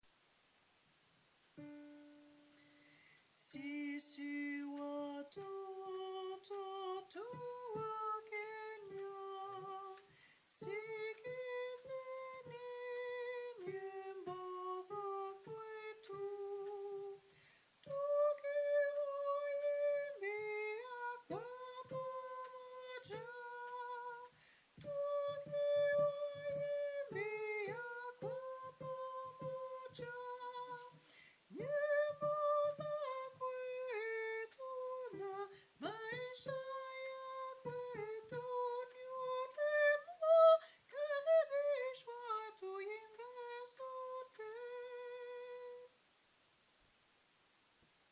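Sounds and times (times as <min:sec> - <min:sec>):
soprano voices singing: 0:03.4 - 0:45.9.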